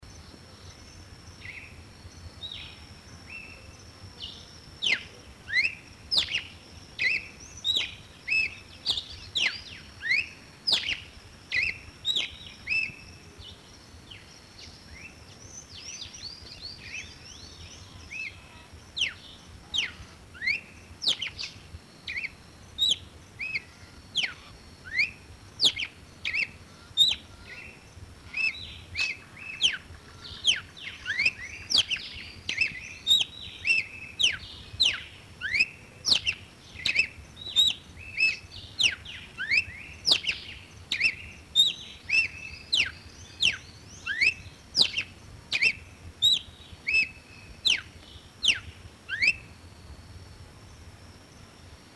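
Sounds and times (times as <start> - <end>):
red-cowled cardinal singing: 0.0 - 51.9.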